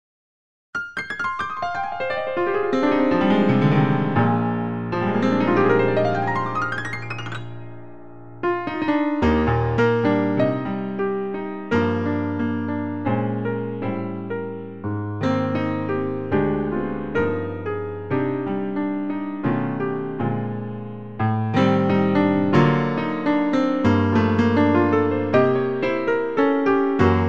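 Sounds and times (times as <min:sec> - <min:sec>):
piano: 0:00.8 - 0:27.2.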